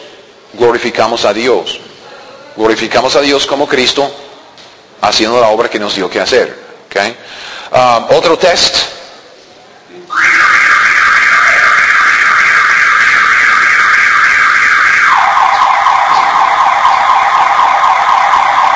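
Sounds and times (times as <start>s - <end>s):
speech: 0.5s - 1.9s, 2.6s - 4.3s, 5.0s - 9.0s
loud electronic alarm blaring: 10.1s - 18.7s.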